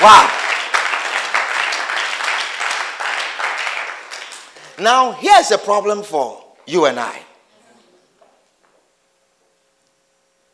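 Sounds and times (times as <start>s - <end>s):
speech: 0.0s - 0.3s, 4.8s - 7.3s
crowd applauding with dense overlapping hand claps: 0.0s - 5.2s.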